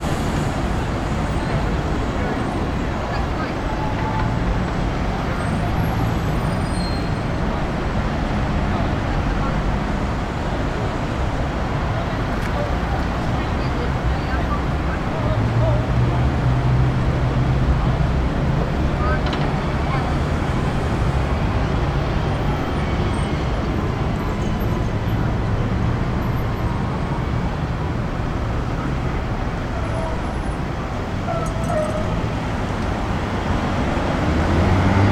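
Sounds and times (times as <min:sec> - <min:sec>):
urban city ambience in a London square: 0:00.0 - 0:35.0.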